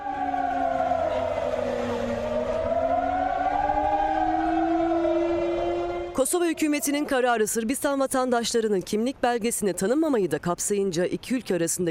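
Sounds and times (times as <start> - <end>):
sirens wailing as a call to protest: 0.0 - 7.6
speech: 6.2 - 11.9.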